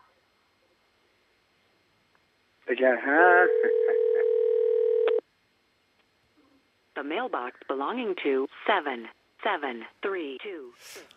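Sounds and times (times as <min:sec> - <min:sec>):
speech: 0:02.7 - 0:04.4, 0:07.0 - 0:11.1
ringing tone of a call to a foreign number: 0:03.3 - 0:05.2.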